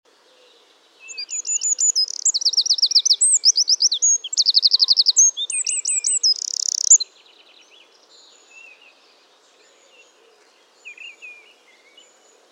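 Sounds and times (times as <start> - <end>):
Eurasian wren Troglodytes troglodytes song with high trills: 1.1 - 7.0.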